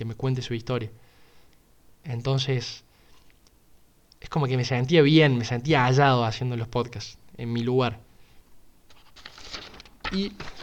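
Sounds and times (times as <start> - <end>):
speech: 0.0 - 1.1, 2.0 - 2.9, 4.2 - 8.1, 10.1 - 10.6
sheet of paper rustling and crinkling: 8.9 - 10.6.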